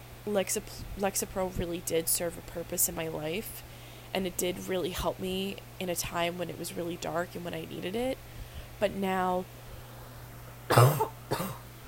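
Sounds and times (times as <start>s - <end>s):
faint steady low hum: 0.0s - 11.8s
speech: 0.2s - 9.6s, 10.7s - 11.1s
coughing: 10.7s - 11.7s.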